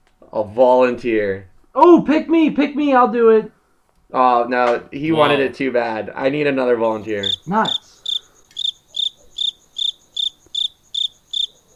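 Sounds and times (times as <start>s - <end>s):
speech: 0.4s - 8.0s
cricket chirping: 6.8s - 11.7s.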